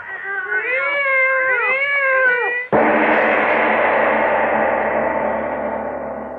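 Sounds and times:
two cats yowling and caterwauling: 0:00.0 - 0:02.8
sudden loud crash: 0:02.7 - 0:06.3.

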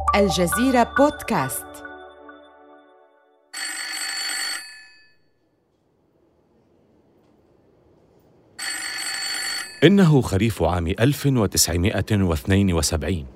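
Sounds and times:
speech: 0:00.1 - 0:01.9, 0:09.8 - 0:13.3
old-style telephone bell ringing: 0:03.5 - 0:05.2, 0:08.6 - 0:09.9.

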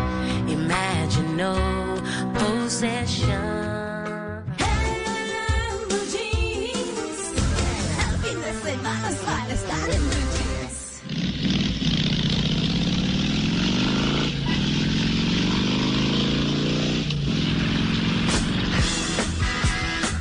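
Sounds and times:
busy music-like sound: 0:00.0 - 0:11.1, 0:18.2 - 0:20.1
motorcycle engine revving: 0:09.8 - 0:20.1.

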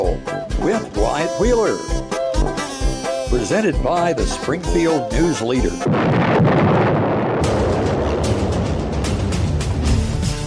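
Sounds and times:
bright jaunty tune with kazoo noises: 0:00.0 - 0:05.9
speech: 0:00.7 - 0:02.2, 0:03.3 - 0:06.6
rumbling explosion sound effect: 0:05.8 - 0:10.3.

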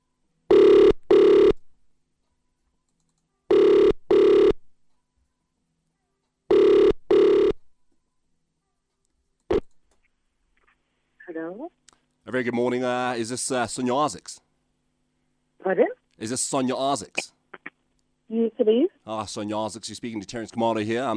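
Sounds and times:
phone ringback tone on an outgoing call: 0:00.5 - 0:01.6, 0:03.5 - 0:04.6, 0:06.5 - 0:07.6
brief click: 0:02.2 - 0:03.3
speech: 0:11.4 - 0:14.4, 0:15.6 - 0:17.4, 0:18.3 - 0:21.1.

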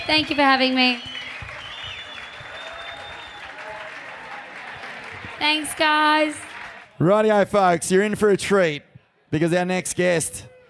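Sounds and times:
audience applause: 0:00.0 - 0:07.0
speech: 0:00.1 - 0:01.1, 0:05.4 - 0:10.5
faint whistle-like tone: 0:01.0 - 0:03.5.

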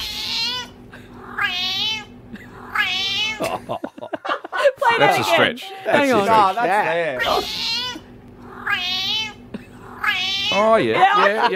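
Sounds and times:
cat meowing with a Scouse-like accent: 0:00.0 - 0:02.1, 0:02.7 - 0:03.4, 0:07.2 - 0:11.1
laughter: 0:03.4 - 0:06.8, 0:10.6 - 0:11.5
speech: 0:05.0 - 0:07.8, 0:10.6 - 0:11.5.

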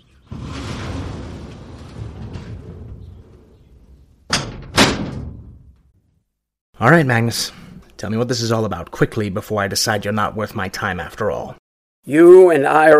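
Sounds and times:
low rumbling shuffling movement in the room: 0:00.0 - 0:06.0
door swinging shut with a latching clunk: 0:00.1 - 0:05.9
speech: 0:06.8 - 0:12.9.

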